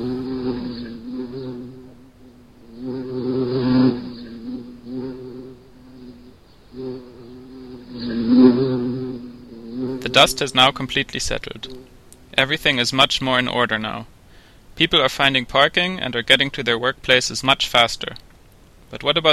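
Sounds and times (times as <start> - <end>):
bee buzzing: 0.0 - 12.5
speech: 10.2 - 14.2, 14.8 - 18.2, 18.9 - 19.3.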